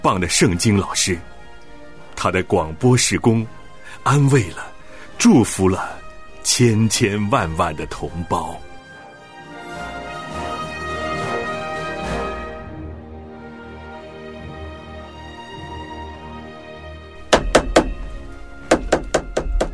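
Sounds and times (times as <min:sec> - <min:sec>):
speech: 0:00.0 - 0:01.4, 0:02.2 - 0:08.7
music: 0:00.0 - 0:19.7
hammer blows fixing a loose chair leg: 0:17.3 - 0:19.7.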